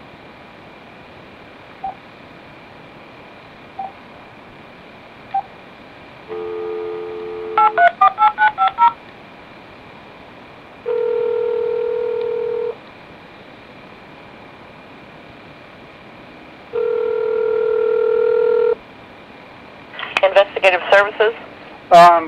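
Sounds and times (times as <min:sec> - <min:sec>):
long steady telephone ringing tones: 0:06.3 - 0:08.9, 0:10.9 - 0:12.8, 0:16.8 - 0:18.8
speech: 0:21.0 - 0:22.2.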